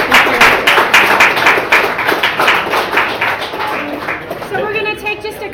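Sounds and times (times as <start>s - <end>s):
audience applause after a live interview: 0.0s - 5.0s.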